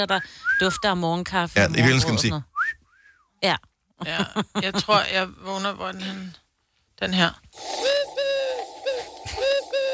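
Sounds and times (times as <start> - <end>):
speech: 0.0 - 2.5, 3.4 - 6.4, 7.0 - 8.2
blackbird calling outside a window in the morning: 7.6 - 9.9.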